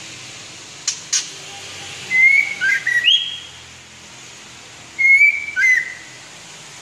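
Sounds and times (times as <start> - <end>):
white-rumped shama song: 2.1 - 3.6, 5.0 - 6.2.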